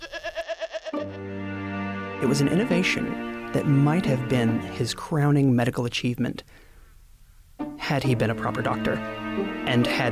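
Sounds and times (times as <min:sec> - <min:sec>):
goat bleating: 0:00.0 - 0:01.2
speech: 0:02.2 - 0:06.7, 0:07.9 - 0:10.1.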